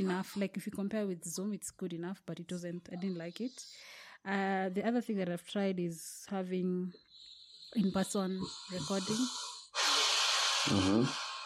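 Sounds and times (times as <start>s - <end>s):
speech: 0.0s - 7.1s, 7.7s - 9.5s, 10.6s - 11.2s
dog snoring: 7.1s - 11.4s.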